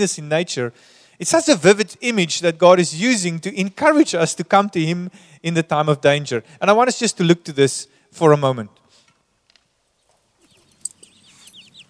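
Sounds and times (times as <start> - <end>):
speech: 0.0 - 8.8
chicks peeping on a farm: 10.4 - 11.8
hen clucking on a farm: 10.5 - 11.8.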